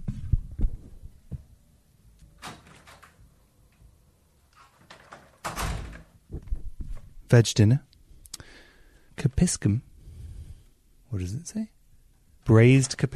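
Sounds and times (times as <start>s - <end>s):
front door opening and closing: 2.2s - 6.6s
door latch knocking and rattling: 2.3s - 3.3s, 4.6s - 6.2s
speech: 7.3s - 7.9s, 9.4s - 9.9s, 11.1s - 11.8s, 12.5s - 13.1s.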